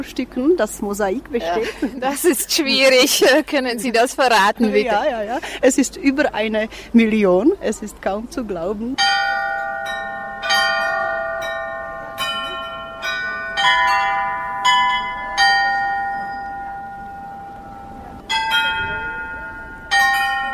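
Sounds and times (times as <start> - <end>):
speech: 0.0 - 9.2
carillon playing a folk melody: 9.0 - 20.5.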